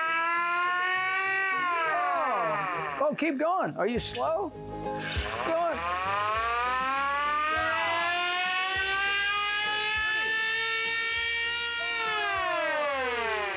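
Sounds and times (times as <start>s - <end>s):
pedal-powered siren wailing, driven by a stationary bike: 0.0s - 3.0s, 5.7s - 13.5s
speech: 3.0s - 5.6s.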